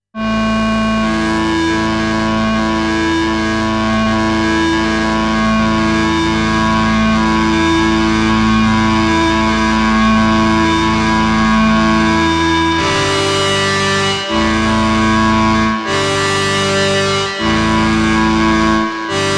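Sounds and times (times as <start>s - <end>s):
aggressive motor synthesizer: 0.2s - 19.3s.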